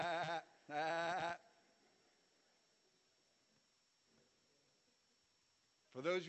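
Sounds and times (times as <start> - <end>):
audience imitating sheep bleating: 0.0 - 1.4
speech: 0.0 - 1.5, 6.0 - 6.2.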